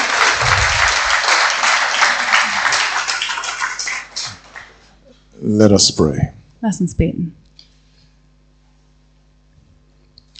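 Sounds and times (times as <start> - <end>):
church congregation applauding: 0.0 - 4.9
speech: 5.4 - 7.5.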